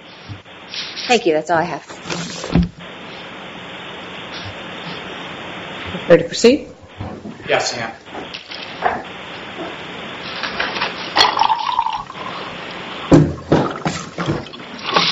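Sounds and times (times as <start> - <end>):
speech: 1.1 - 1.9, 6.0 - 6.7, 7.5 - 8.1
water pouring into a glass to refill it: 11.2 - 15.0.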